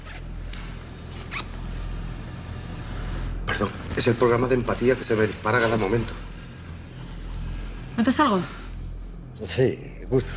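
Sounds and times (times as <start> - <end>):
steady low hum: 0.0 - 10.3
zipper being pulled down: 1.1 - 1.7
speech: 3.6 - 6.3, 8.0 - 8.6, 9.4 - 10.3.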